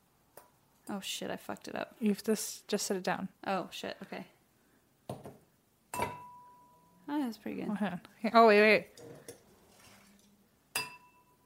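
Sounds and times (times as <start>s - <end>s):
speech: 0.9s - 4.4s, 7.3s - 9.1s
glasses clinking in a toast: 5.9s - 6.7s, 10.7s - 11.4s.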